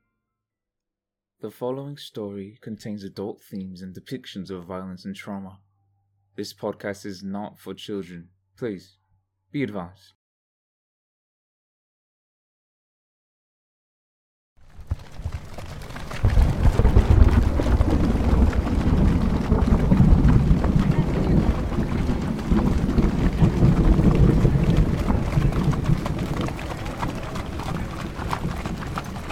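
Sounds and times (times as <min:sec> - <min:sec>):
speech: 0:01.4 - 0:05.7, 0:06.4 - 0:10.2
heavy rain pouring: 0:14.7 - 0:29.3
deep rolling rumbles of thunder: 0:14.8 - 0:29.3.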